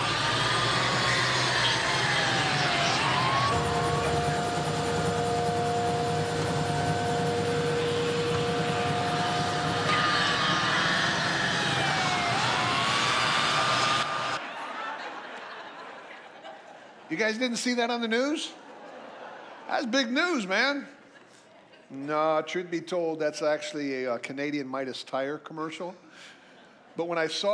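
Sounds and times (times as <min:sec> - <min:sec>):
police car chase engines roaring in Saskatoon Canada: 0:00.0 - 0:14.4
police siren wailing in a car chase in Saskatoon Canada: 0:00.0 - 0:14.4
road noise from a police car chase: 0:00.0 - 0:14.4
laughter: 0:07.8 - 0:17.1, 0:18.5 - 0:22.0
speech: 0:17.2 - 0:18.6, 0:19.7 - 0:21.0, 0:21.9 - 0:26.4, 0:27.0 - 0:27.5.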